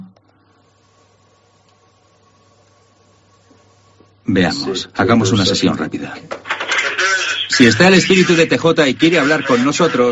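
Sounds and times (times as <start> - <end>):
electromagnetic white-noise static from a handheld device for recording psychophonies: 0.0 - 10.1
low electrical hum: 0.0 - 10.1
speech: 4.3 - 6.5, 7.6 - 10.1.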